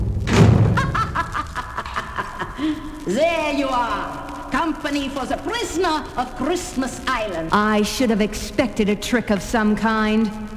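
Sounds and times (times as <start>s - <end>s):
heavy door slamming shut: 0.0s - 2.2s
laughter: 0.6s - 9.8s
speech: 2.6s - 10.4s.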